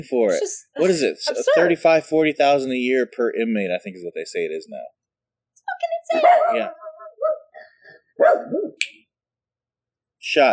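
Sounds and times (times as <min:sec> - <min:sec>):
speech: 0:00.0 - 0:05.0, 0:06.0 - 0:07.4, 0:08.2 - 0:09.0, 0:10.2 - 0:10.5
laughter: 0:00.9 - 0:02.0
running dog barking and yelping: 0:06.2 - 0:07.6, 0:08.2 - 0:08.8.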